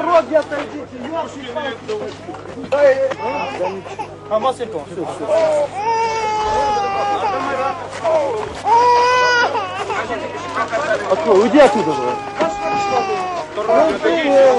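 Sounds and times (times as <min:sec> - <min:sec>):
dense crowd hubbub with shouting and talking voices: 0:00.0 - 0:14.5
speech: 0:00.2 - 0:14.5
newborn infant crying in a woman's arms: 0:03.2 - 0:04.2, 0:05.3 - 0:10.5, 0:11.1 - 0:14.5.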